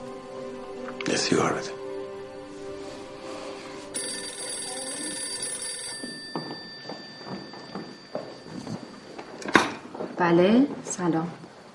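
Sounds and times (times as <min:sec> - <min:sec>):
speech: 0:01.0 - 0:01.8, 0:10.2 - 0:11.4
telephone ringing with an electronic trill: 0:03.9 - 0:09.6.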